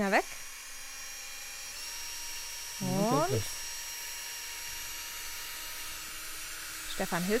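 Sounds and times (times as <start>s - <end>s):
speech: 0.0s - 0.4s, 3.3s - 3.6s, 7.0s - 7.3s
drill motor whirring as it bores into material: 0.4s - 7.3s
steady hum: 2.8s - 3.5s.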